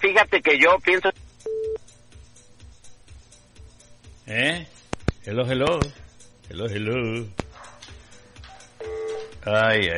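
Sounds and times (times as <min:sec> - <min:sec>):
speech: 0:00.2 - 0:01.2, 0:04.3 - 0:07.4, 0:09.4 - 0:09.9
loud steady telephone tone: 0:01.5 - 0:01.8, 0:08.8 - 0:09.3
telephone dialing tones on a faulty line: 0:08.8 - 0:09.4.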